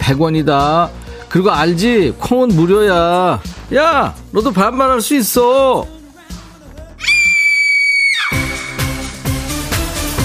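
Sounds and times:
music: 0.0s - 10.2s
speech: 0.1s - 6.0s
person screaming: 7.0s - 9.0s.

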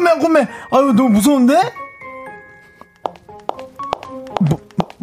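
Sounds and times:
speech: 0.1s - 1.8s, 4.4s - 5.0s
hard-soled dress shoes clicking in footsteps: 2.3s - 5.0s.

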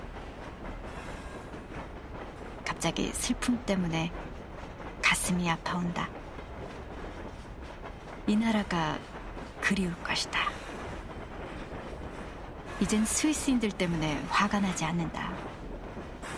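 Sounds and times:
train rolling along rails: 0.0s - 16.3s
speech: 2.8s - 4.3s, 5.3s - 6.2s, 8.3s - 9.1s, 9.7s - 10.5s, 12.8s - 15.4s.

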